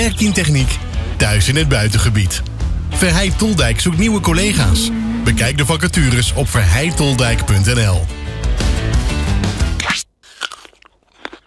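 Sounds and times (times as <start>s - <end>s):
speech: 0.0s - 8.2s
music: 0.0s - 10.0s
crisp bite into an apple: 9.8s - 11.4s
crunching chews of an apple: 9.8s - 11.4s.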